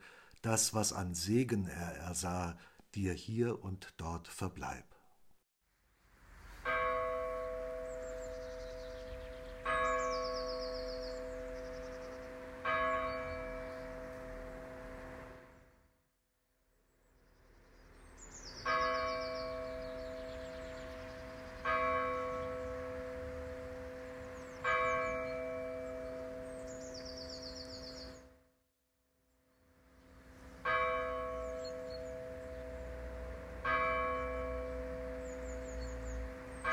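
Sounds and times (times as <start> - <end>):
speech: 0.4 - 5.0
church bell tolling slowly: 6.6 - 15.3, 18.7 - 28.0, 30.6 - 36.7.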